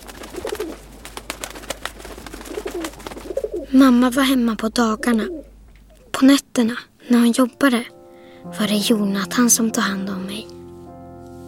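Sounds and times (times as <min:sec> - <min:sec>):
pigeons cooing: 0:00.0 - 0:06.2
hum: 0:00.0 - 0:11.4
speech: 0:03.7 - 0:05.4, 0:06.2 - 0:10.6.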